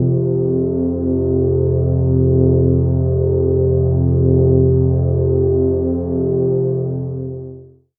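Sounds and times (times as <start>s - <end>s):
synth pad on C3: 0.0s - 7.7s.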